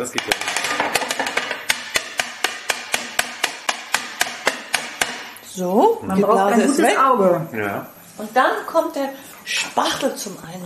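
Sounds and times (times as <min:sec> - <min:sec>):
speech: 0:00.0 - 0:01.4, 0:05.6 - 0:10.6
chocolate mould knocking against a hard surface to remove an air bubble: 0:00.0 - 0:05.3.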